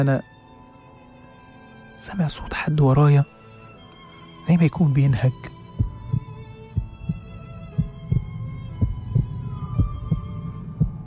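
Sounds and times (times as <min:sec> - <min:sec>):
speech: 0:00.0 - 0:00.3, 0:02.0 - 0:03.4, 0:04.4 - 0:05.6
faint sustained hum: 0:00.0 - 0:11.0
pounding heart of a frightened person in an elevator: 0:05.7 - 0:11.0.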